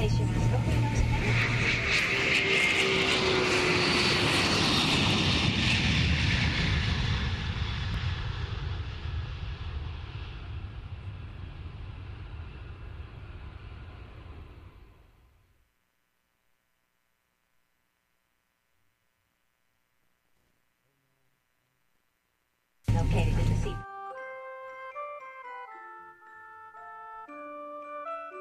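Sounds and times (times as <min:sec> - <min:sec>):
airplane engines roaring during takeoff: 0:00.0 - 0:15.0, 0:22.9 - 0:23.8.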